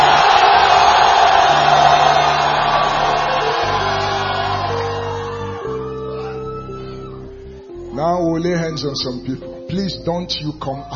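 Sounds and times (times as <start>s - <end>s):
large audience shouting and yelling: 0.0s - 7.0s
speech: 8.7s - 10.9s.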